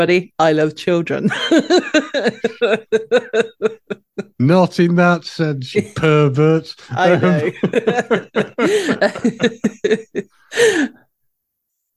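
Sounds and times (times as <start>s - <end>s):
speech: 0.0s - 11.0s
laughter: 1.3s - 4.4s, 6.8s - 10.8s
man coughing: 7.0s - 10.0s.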